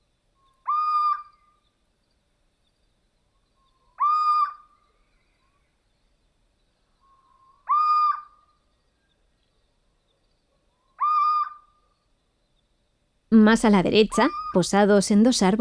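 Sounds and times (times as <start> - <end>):
little owl plaintive mewing calls on a tree branch: 0.5 - 1.6, 3.6 - 4.8, 7.0 - 8.6, 10.8 - 11.9, 14.2 - 14.8
speech: 13.3 - 15.6.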